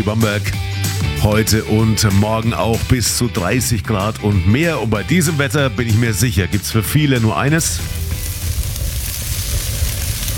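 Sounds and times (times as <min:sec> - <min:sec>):
speech: 0:00.0 - 0:08.0
steak sizzling on a barbecue grill: 0:07.5 - 0:10.3.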